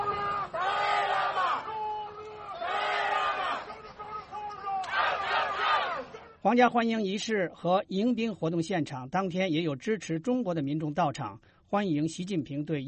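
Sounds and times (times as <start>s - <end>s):
crowd of protesters shouting slogans outside a royal palace in London: 0.0s - 6.4s
speech: 6.4s - 12.8s.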